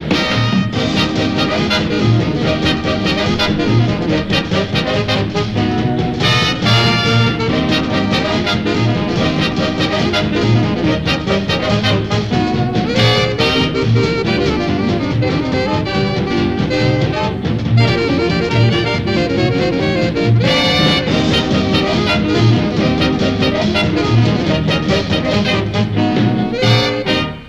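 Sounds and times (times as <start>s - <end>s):
conga drum rhythm: 0.0s - 27.4s.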